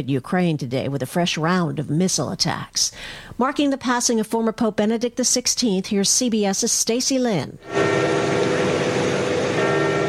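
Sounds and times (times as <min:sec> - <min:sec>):
speech: 0:00.0 - 0:08.1
church bells ringing over St. Peter's Square: 0:07.6 - 0:10.0.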